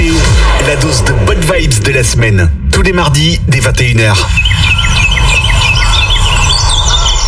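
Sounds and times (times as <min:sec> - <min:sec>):
steady low rumble: 0:00.0 - 0:07.2
speech: 0:00.7 - 0:04.6
small birds chirping: 0:03.8 - 0:07.2.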